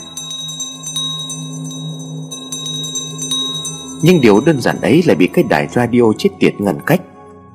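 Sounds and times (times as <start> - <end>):
bell ringing frantically as a call for help on a mountainside: 0.0 - 5.5
speech: 4.0 - 7.1.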